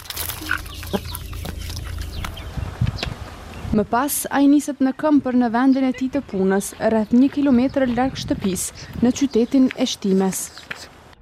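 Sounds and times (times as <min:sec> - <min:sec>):
chickens clucking as they are fed in a garden in the morning: 0:00.2 - 0:03.2
speech: 0:00.4 - 0:01.3, 0:03.7 - 0:10.9.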